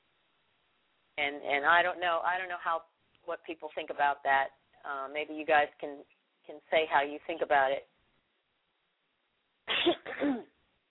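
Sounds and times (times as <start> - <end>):
speech: 1.2 - 7.9, 9.8 - 10.5
person coughing: 9.7 - 10.6.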